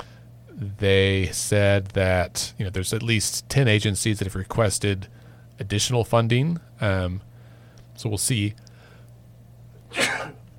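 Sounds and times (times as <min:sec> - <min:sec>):
faint steady hum: 0:00.0 - 0:10.5
speech: 0:00.6 - 0:07.3, 0:08.0 - 0:08.6
person sneezing: 0:09.9 - 0:10.4.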